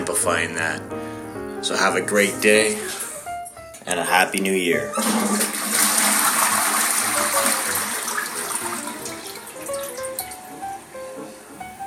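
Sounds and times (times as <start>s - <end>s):
speech: 0.2s - 3.0s, 3.9s - 5.8s
toilet flushing: 4.9s - 10.4s.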